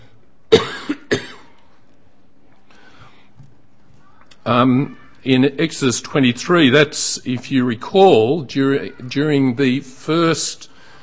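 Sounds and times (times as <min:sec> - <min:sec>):
person coughing from a tickle in the throat: 0:00.5 - 0:01.5
speech: 0:04.5 - 0:10.7.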